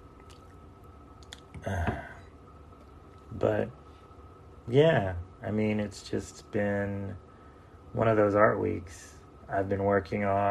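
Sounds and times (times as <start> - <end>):
faint wet mouth clicks: 0.2 - 0.6, 1.2 - 1.7
person gulping a mouthful of water: 1.2 - 2.2
speech: 1.6 - 1.9, 3.4 - 3.8, 4.7 - 7.2, 7.9 - 10.4.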